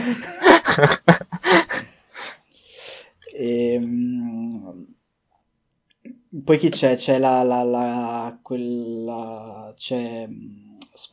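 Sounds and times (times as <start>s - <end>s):
laughter: 0.0s - 1.8s
speech: 0.1s - 1.2s, 6.5s - 11.1s
voice imitating gasping underwater breathing: 1.4s - 3.2s.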